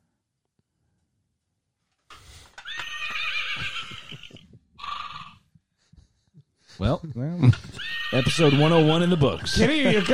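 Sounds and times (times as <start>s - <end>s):
horse neighing: 2.6s - 5.4s, 7.7s - 10.1s
speech: 6.8s - 10.1s.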